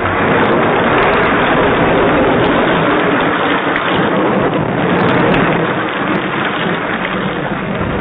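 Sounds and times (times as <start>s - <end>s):
deep low rumble of rolling thunder: 0.0s - 7.9s
heavy rain pouring: 0.0s - 7.9s.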